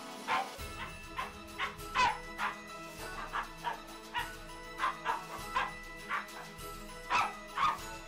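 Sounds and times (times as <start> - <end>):
small dog yapping excitedly: 0.2 - 6.5, 7.1 - 8.0.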